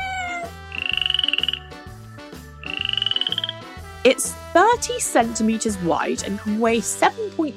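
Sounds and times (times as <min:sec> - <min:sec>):
steady lower rhythmic frog calls: 0:00.6 - 0:01.9, 0:02.6 - 0:03.8
rapid rattling frog croaks with a high trilling tone: 0:00.7 - 0:01.6, 0:02.6 - 0:03.6
frog chorus croaking: 0:00.7 - 0:01.8, 0:02.6 - 0:03.7
speech: 0:04.0 - 0:07.5.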